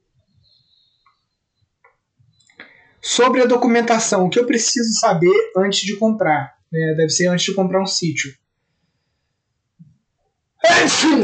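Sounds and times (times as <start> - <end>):
speech: 3.0 - 8.4
single loud sneeze: 10.6 - 11.2.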